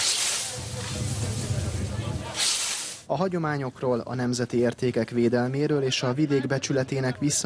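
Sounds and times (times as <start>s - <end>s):
scythe slicing through standing grain in a traditional hand harvest in Hungary: 0.0s - 1.4s, 2.3s - 3.0s
low outdoor rumble: 0.2s - 2.4s
speech: 3.1s - 7.4s.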